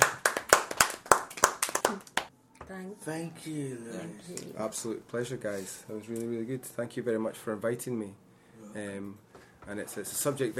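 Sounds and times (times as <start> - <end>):
small group of people clapping for a guest: 0.0 - 2.3
speech: 2.7 - 10.5.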